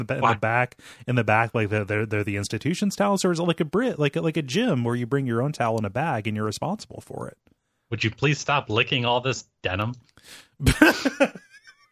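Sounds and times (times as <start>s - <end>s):
speech: 0.0s - 11.5s
person imitating a cat hacking up a hairball: 0.2s - 0.4s
laughter: 10.6s - 11.8s.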